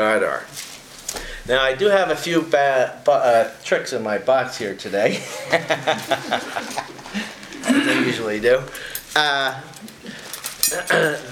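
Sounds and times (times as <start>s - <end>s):
speech: 0.0s - 0.6s, 1.4s - 7.3s, 8.0s - 11.3s
laughter: 5.1s - 11.3s
pile of silverware clinking as it is handled: 8.7s - 11.3s.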